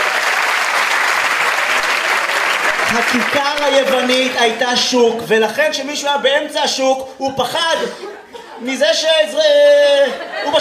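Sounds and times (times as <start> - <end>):
audience applause and cheering for a woman who solved a puzzle: 0.0 - 4.9
speech: 2.9 - 10.6
laughter: 7.7 - 10.6.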